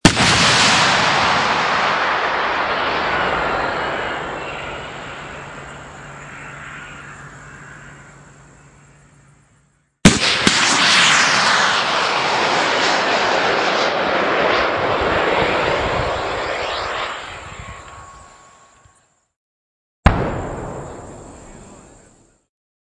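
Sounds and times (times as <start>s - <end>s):
anti tank missiles launching: 0.0s - 6.2s, 10.0s - 18.5s, 20.0s - 22.1s.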